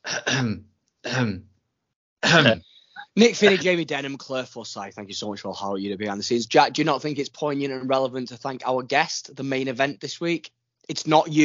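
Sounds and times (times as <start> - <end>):
person clearing throat: 0.0 - 1.4, 2.2 - 2.6, 3.4 - 3.6
person coughing: 0.0 - 1.4, 2.2 - 2.6, 3.4 - 3.6
speech: 0.2 - 1.5, 2.2 - 11.4.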